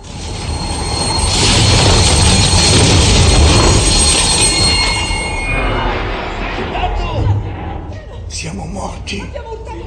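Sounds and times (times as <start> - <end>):
train derailing with squealing metal wheels: 0.0 - 6.7
heavy rumbling of a derailing train: 0.0 - 9.8.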